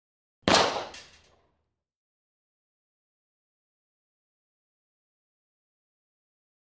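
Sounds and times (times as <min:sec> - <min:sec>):
bullet hitting target: 0:00.4 - 0:01.4
pistol firing: 0:00.5 - 0:01.2.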